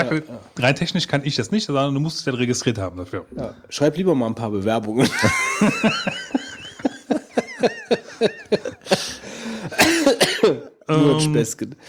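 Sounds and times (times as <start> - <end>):
speech: 0.0 - 6.2, 7.6 - 9.8, 10.9 - 11.8
laughter: 4.9 - 10.8
fit of short rhythmic coughs: 8.8 - 10.8.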